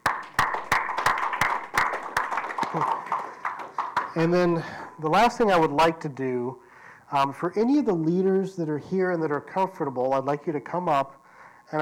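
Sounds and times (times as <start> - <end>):
audience applauding: 0.0 - 4.6
sharp claps in a quick steady rhythm: 0.0 - 4.6
speech: 4.2 - 11.8.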